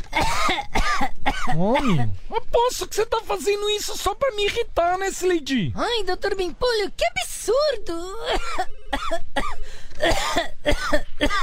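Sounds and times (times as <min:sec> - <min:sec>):
woman hacking coughs: 0:00.1 - 0:02.2, 0:08.2 - 0:11.4
speech: 0:01.5 - 0:11.4.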